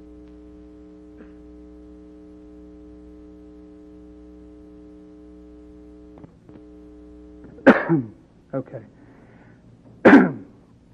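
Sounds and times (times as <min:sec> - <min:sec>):
single sharp cough: 0:01.2 - 0:01.5, 0:07.6 - 0:08.2, 0:10.0 - 0:10.5
speech: 0:07.9 - 0:09.0.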